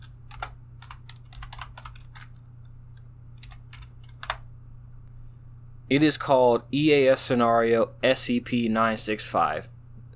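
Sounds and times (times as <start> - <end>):
typing on a computer keyboard: 0.0 - 4.4
low steady hum: 0.0 - 10.1
speech: 5.9 - 9.7.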